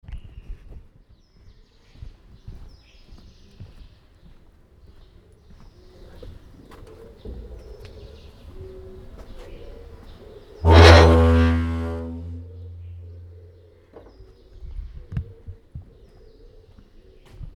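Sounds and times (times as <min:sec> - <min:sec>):
horn in Kathmandu: 0:10.7 - 0:13.3.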